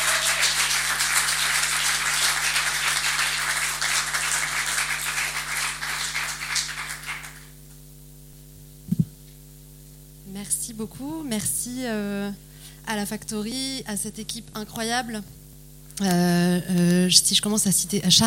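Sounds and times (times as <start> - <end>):
audience applauding a speaker: 0.0 - 7.6
low electrical hum: 0.0 - 18.2
speech: 10.8 - 15.4, 16.0 - 18.2.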